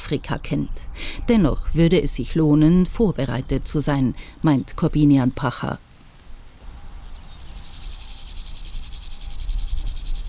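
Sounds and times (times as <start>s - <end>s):
speech: 0.1s - 5.9s
grasshoppers chirping on a former airport taxiway: 6.6s - 10.2s.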